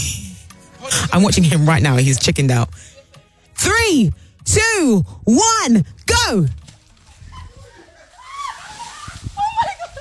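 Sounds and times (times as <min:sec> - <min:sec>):
excited voices laughing: 0:00.0 - 0:01.8, 0:07.0 - 0:09.9
speech: 0:00.9 - 0:03.0, 0:03.6 - 0:06.6
water sloshing and splashing as someone plunges into an ice bath: 0:08.6 - 0:09.9.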